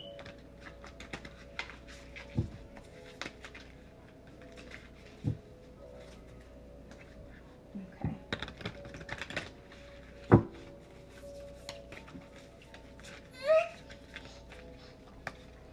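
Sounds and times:
tarot cards being shuffled for a reading: 0.1s - 5.4s, 8.2s - 15.5s.

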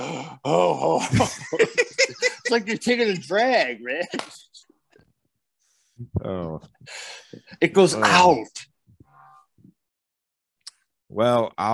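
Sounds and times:
man wheezing heavily in a deep old-man voice: 0.0s - 1.0s
speech: 0.2s - 4.6s, 6.0s - 8.7s, 11.1s - 11.7s
laughter: 0.9s - 4.6s.

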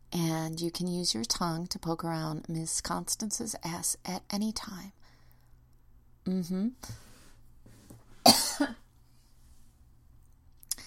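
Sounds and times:
speech: 0.5s - 5.0s, 6.3s - 7.0s, 8.2s - 8.8s
person coughing: 8.2s - 8.9s.

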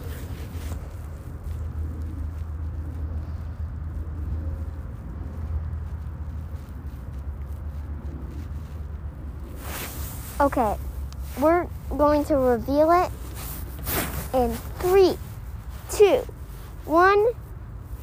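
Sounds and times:
low rumbling wind along a nature center dirt path: 0.0s - 18.0s
faint hiss: 9.4s - 17.4s
speech: 10.4s - 10.8s, 11.4s - 13.2s, 14.3s - 15.2s, 15.9s - 17.4s.

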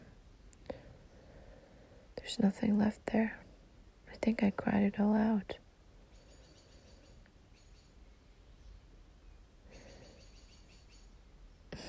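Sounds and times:
soft steady hiss: 0.0s - 11.8s
speech: 2.2s - 3.4s, 4.2s - 5.6s
birds chirping outdoors: 6.0s - 11.7s.

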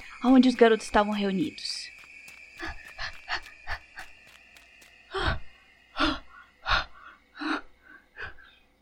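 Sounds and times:
speech: 0.2s - 1.9s
woman panting out of breath: 2.6s - 4.4s, 5.1s - 8.6s.

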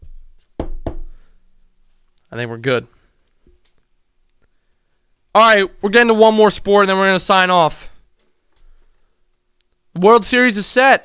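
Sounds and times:
knocking on a wooden surface: 0.6s - 1.2s
speech: 2.3s - 3.0s, 5.4s - 7.9s, 10.0s - 11.0s.

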